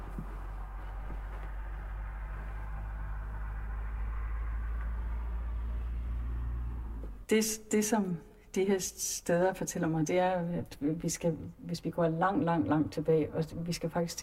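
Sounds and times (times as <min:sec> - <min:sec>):
steady road traffic rumble of cars: 0:00.0 - 0:07.3
speech: 0:07.3 - 0:14.2.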